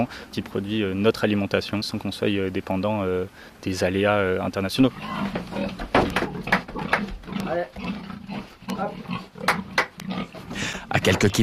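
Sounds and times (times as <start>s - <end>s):
speech: 0.0s - 6.6s, 7.5s - 8.2s, 8.8s - 9.3s, 11.0s - 11.4s
pigs grunting and snorting on a farm in Pozieux: 4.8s - 11.4s.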